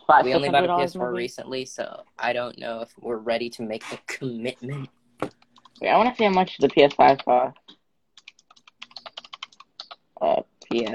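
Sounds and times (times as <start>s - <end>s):
speech: 0.1s - 7.7s, 10.2s - 10.9s
loud rapid computer keyboard typing: 5.3s - 10.9s.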